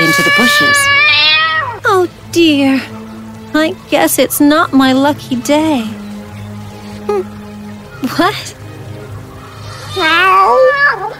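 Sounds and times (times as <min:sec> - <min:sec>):
cat meowing: 0:00.0 - 0:01.8, 0:09.7 - 0:11.1
speech: 0:00.1 - 0:01.0, 0:02.3 - 0:06.0, 0:07.1 - 0:07.4, 0:08.0 - 0:08.6, 0:10.0 - 0:11.1.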